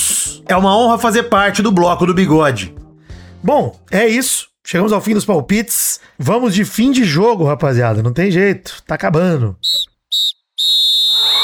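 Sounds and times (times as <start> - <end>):
speech: 0.2 - 2.8, 3.4 - 10.8
referee's whistle blasts: 9.6 - 11.4.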